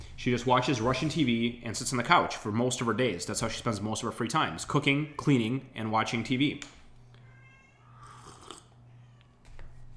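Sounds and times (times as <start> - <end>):
steady low electrical hum: 0.0 - 9.9
speech: 0.2 - 6.8
cat meowing outside a closed door: 7.2 - 8.3, 8.9 - 9.4.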